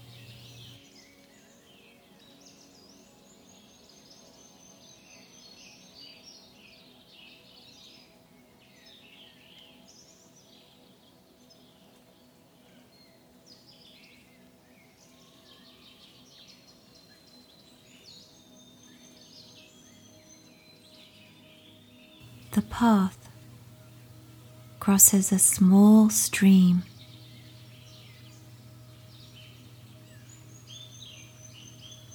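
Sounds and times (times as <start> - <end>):
steady low outdoor hum: 0.0 - 0.8, 22.2 - 32.1
small birds chirping and twittering in the undergrowth: 0.0 - 32.1
speech: 22.6 - 23.2, 24.9 - 26.9.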